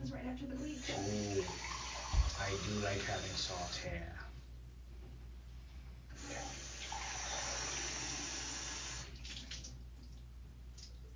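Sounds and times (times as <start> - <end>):
speech: 0.1 - 1.7, 2.4 - 4.3
tap water running while rinsing the side of a chest: 0.6 - 4.0, 6.2 - 9.8.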